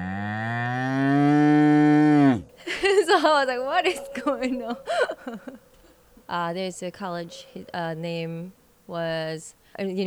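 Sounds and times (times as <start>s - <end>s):
cow mooing in Texas: 0.0s - 2.4s, 3.0s - 9.2s
laughter: 2.6s - 8.3s
speech: 3.2s - 5.7s, 6.3s - 10.0s.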